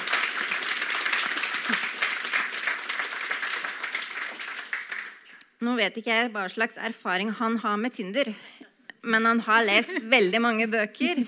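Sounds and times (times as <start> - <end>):
applause from a group: 0.0 - 5.4
speech: 5.8 - 11.2.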